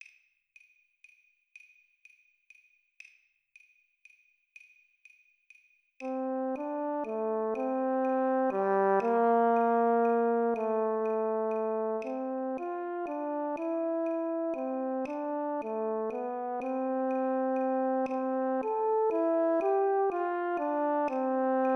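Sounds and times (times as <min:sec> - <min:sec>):
horn playing at 40 BPM: 0:06.1 - 0:21.7.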